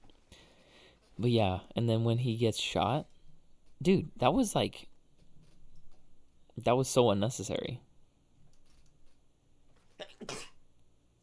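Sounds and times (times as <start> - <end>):
speech: 1.2 - 3.1, 3.8 - 4.9, 6.6 - 7.8
person sneezing: 10.0 - 10.6.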